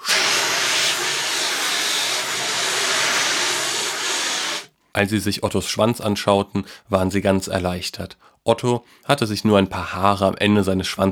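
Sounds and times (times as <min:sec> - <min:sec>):
fire extinguisher spraying to put out a fire in a living room: 0:00.0 - 0:04.7
speech: 0:05.0 - 0:11.1.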